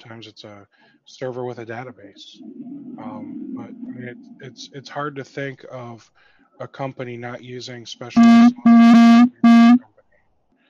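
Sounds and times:
speech: 0.0 - 8.9
harsh electronic buzzing from cellphone interference near microphone: 8.2 - 9.8.

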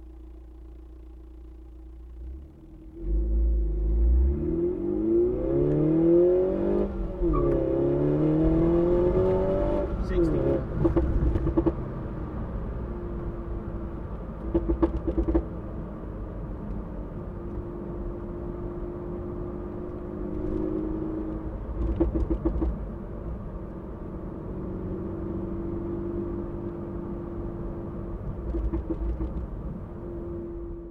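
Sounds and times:
car engine accelerating from 0 to 60 with windows closed: 0.0 - 30.8
sharp clicks and knocks: 10.8 - 11.8, 14.4 - 15.5, 21.8 - 22.8, 28.3 - 29.5.

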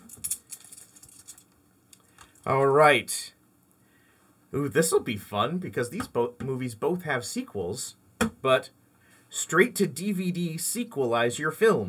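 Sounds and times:
hand rummaging through a bag of coins: 0.0 - 2.4
speech: 2.4 - 3.4, 4.5 - 11.8.

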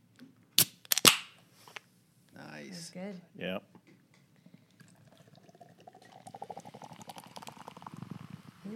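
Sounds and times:
speech: 2.7 - 3.9
lime wit beer with tangerine poured into a glass: 4.5 - 8.7.

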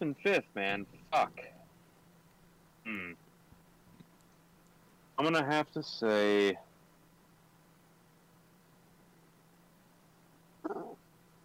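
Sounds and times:
speech: 0.0 - 1.6, 5.2 - 6.7
faint hum: 0.0 - 11.4
dog whimpering: 10.6 - 11.0.

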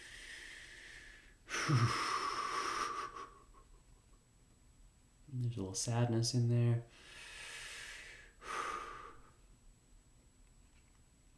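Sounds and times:
slow deep breath taken while sitting with fear: 0.0 - 3.6, 6.9 - 9.4
speech: 1.7 - 2.1, 5.3 - 7.2.

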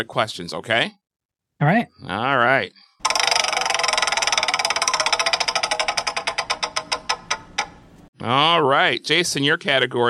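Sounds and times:
speech: 0.0 - 1.0, 1.6 - 2.9, 8.2 - 10.0
game-show prize wheel spinning with ratcheting clicks: 3.0 - 7.9.

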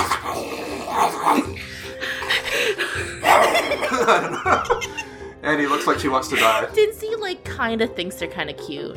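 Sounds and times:
person growling and snarling like an angry dog: 0.0 - 1.9, 3.0 - 4.0
laughter: 2.2 - 6.6
speech: 4.1 - 4.7, 5.5 - 8.9.

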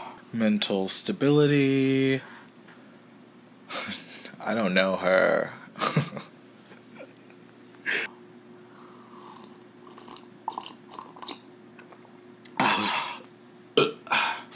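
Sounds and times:
speech: 0.3 - 2.3, 4.5 - 5.6
person burping: 12.5 - 13.2, 13.7 - 14.3.

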